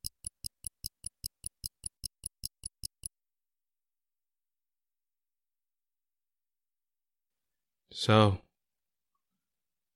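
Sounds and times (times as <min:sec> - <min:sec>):
watch ticking: 0:00.0 - 0:03.1
speech: 0:08.0 - 0:08.4.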